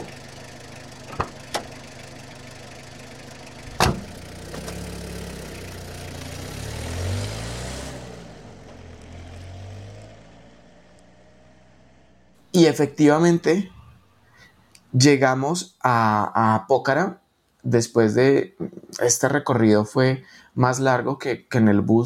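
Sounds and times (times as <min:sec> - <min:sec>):
mountain jeep engine running: 0:00.0 - 0:15.2
clunks and knocks: 0:01.1 - 0:01.7, 0:03.7 - 0:04.9
speech: 0:12.6 - 0:13.8, 0:14.9 - 0:22.0.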